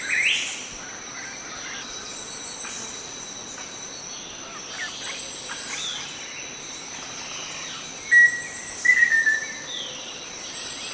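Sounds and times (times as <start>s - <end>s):
continuous insect noise: 0.0s - 10.9s
black-faced antthrush Formicarius analis whistled song: 8.1s - 9.6s.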